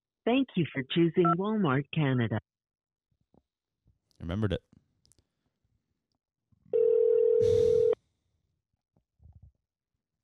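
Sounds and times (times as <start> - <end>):
speech: 0.2 - 2.5, 4.2 - 4.7
electronic ringback tone over a phone line: 6.8 - 8.0.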